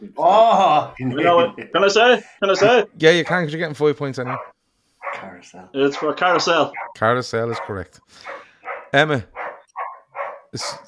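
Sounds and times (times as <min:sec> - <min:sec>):
speech: 0:00.1 - 0:04.6, 0:05.2 - 0:09.4, 0:10.5 - 0:10.8
dog barking: 0:04.2 - 0:10.8.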